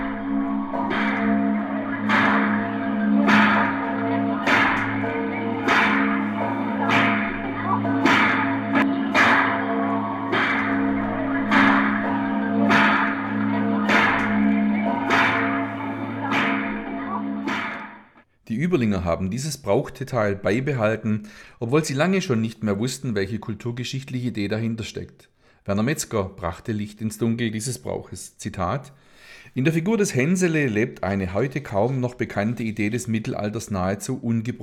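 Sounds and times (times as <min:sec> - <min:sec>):
whip cracking: 0:00.0 - 0:16.8, 0:17.4 - 0:18.0
large church bell ringing: 0:00.0 - 0:18.1
speech: 0:18.6 - 0:34.6.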